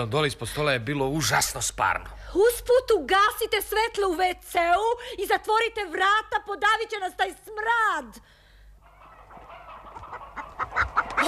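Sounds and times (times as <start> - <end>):
speech: 0.0 - 8.4
stolen chickens clucking under a shabby hood: 8.8 - 11.2.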